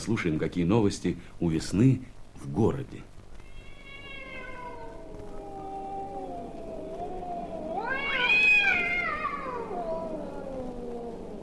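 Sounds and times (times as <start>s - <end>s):
speech: 0.0s - 3.1s
cats caterwauling in long drawn-out yowls: 3.4s - 11.4s.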